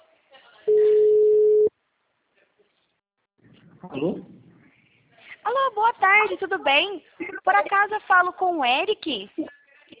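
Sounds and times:
ringback tone of an outgoing phone call: 0.7 - 1.7
speech: 3.8 - 4.4, 5.6 - 9.6.

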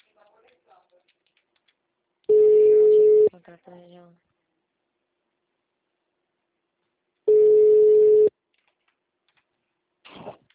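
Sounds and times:
telephone busy tone after a dropped call: 2.3 - 3.3, 7.3 - 8.3
speech: 3.4 - 4.3.

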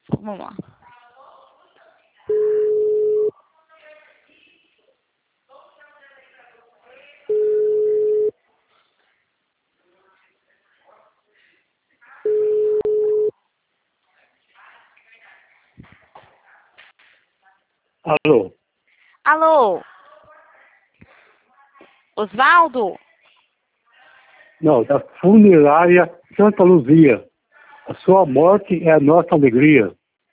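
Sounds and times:
speech: 0.2 - 0.7, 18.1 - 18.6, 19.3 - 19.9, 22.2 - 23.0, 24.6 - 27.3, 27.9 - 30.0
telephone ringback tone from an outgoing call: 2.3 - 3.3, 7.3 - 8.3, 12.3 - 13.3.

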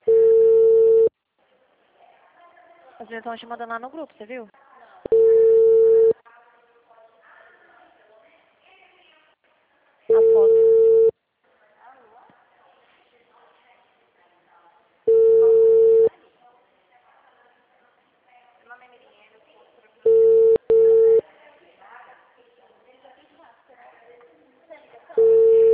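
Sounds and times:
telephone ringback tone while calling a client: 0.0 - 1.1, 5.1 - 6.2, 10.1 - 11.1, 15.1 - 16.1, 20.1 - 21.2, 25.2 - 25.7
speech: 3.0 - 5.2.

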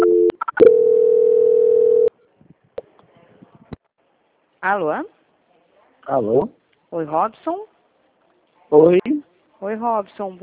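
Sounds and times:
telephone line beeps during a call transfer: 0.0 - 2.1
speech: 4.6 - 5.2, 6.1 - 7.7, 8.7 - 10.4.

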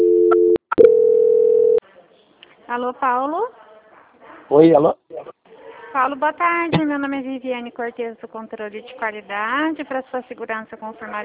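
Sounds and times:
telephone call transfer tone: 0.0 - 1.8
speech: 2.7 - 3.6, 4.5 - 11.2.

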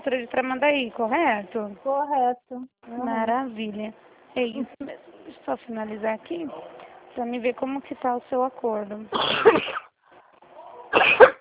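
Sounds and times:
speech: 0.1 - 9.8
person coughing: 9.1 - 9.9, 10.9 - 11.3.

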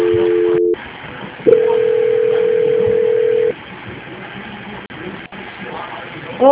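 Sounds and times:
telephone line tones during a call transfer: 0.0 - 0.8, 1.5 - 3.5.

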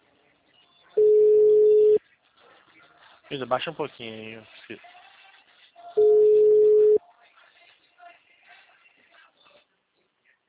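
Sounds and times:
telephone busy tone beep: 1.0 - 2.0, 6.0 - 7.0
speech: 3.3 - 4.9.

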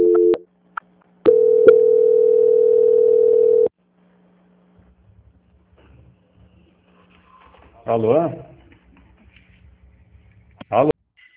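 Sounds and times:
telephone transfer tone while a call is being put through: 0.0 - 0.4, 1.3 - 3.7
telephone line click: 1.3 - 3.7
speech: 7.9 - 8.5, 10.7 - 10.9.

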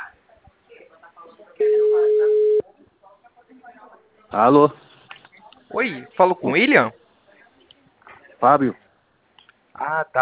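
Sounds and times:
people talking quietly: 0.0 - 10.2
telephone line tone while a call is being placed: 1.6 - 2.6
speech: 4.3 - 4.8, 5.8 - 7.0, 8.4 - 8.8, 9.8 - 10.2.

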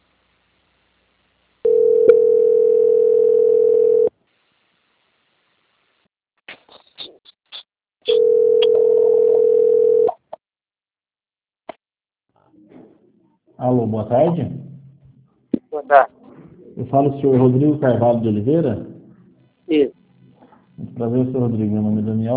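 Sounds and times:
steady telephone line tone while a call is held and transferred: 1.6 - 4.1, 8.1 - 10.2
speech: 13.9 - 14.6, 15.9 - 16.2, 16.8 - 18.9, 19.7 - 20.0, 21.0 - 22.3.

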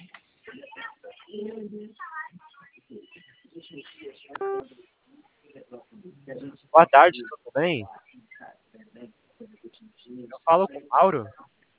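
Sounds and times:
speech: 1.4 - 2.1, 6.3 - 8.0, 10.5 - 11.4
telephone keypad tone from pressing zero: 4.4 - 4.6.

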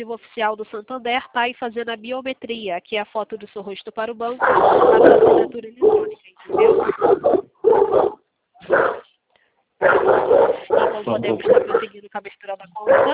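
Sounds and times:
speech: 0.0 - 8.1, 11.0 - 13.1
dog barking: 4.4 - 9.0, 9.8 - 11.9, 12.8 - 13.1.

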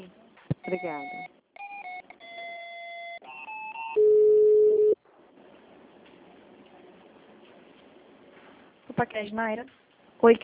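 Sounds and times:
telephone line tones during a call transfer: 0.6 - 5.0
speech: 0.7 - 1.4, 9.0 - 10.4.

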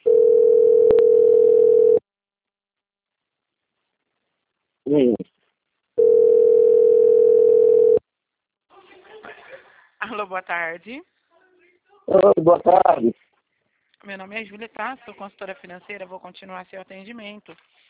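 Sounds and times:
telephone tone while placing a call to a client: 0.0 - 2.0, 6.0 - 8.0
speech: 10.3 - 11.2, 12.1 - 13.3, 14.0 - 17.8.

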